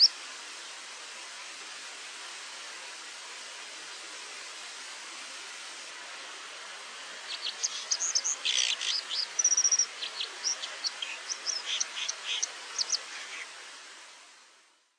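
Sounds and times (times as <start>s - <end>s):
steady background noise: 0.0s - 14.9s
white-throated dipper high thin scratchy chirps and twitters: 7.3s - 13.5s.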